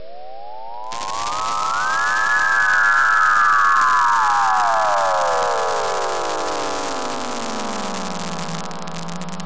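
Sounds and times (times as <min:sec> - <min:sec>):
sci-fi reggae sound effects: 0:00.9 - 0:09.4.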